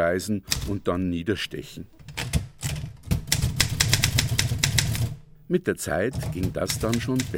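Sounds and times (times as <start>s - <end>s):
speech: 0.0s - 2.3s, 5.5s - 7.3s
Erika manual typewriter keys clacking: 0.5s - 0.8s, 2.0s - 5.2s, 6.1s - 7.3s.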